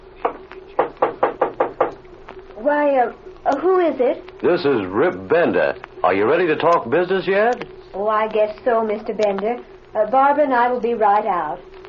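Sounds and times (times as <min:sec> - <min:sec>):
firm knuckle raps on a house door: 0:00.2 - 0:02.0
speech: 0:02.6 - 0:11.8.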